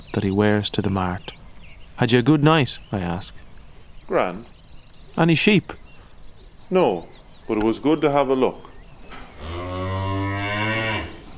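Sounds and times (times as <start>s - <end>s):
speech: 0.2s - 1.4s, 2.0s - 3.4s, 4.1s - 4.6s, 5.2s - 5.8s, 6.7s - 8.7s
cow that has just calved mooing: 9.3s - 11.2s.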